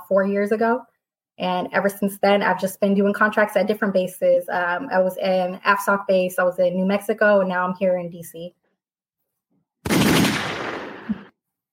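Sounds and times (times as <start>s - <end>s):
speech: 0.1s - 8.6s
rapid burst of gunshots: 9.8s - 11.3s.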